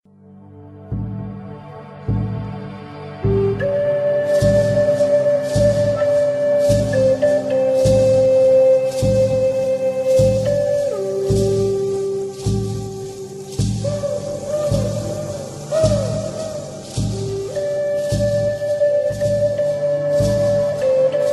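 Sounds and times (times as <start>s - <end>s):
native flute remix: 0.9s - 21.3s.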